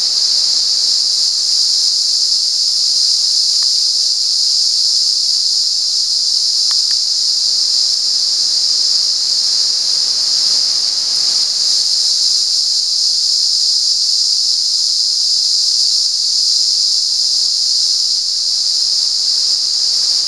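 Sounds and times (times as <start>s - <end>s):
cicada drone at San Ramon: 0.0s - 20.2s
faint ticks: 3.5s - 3.8s, 6.6s - 7.1s.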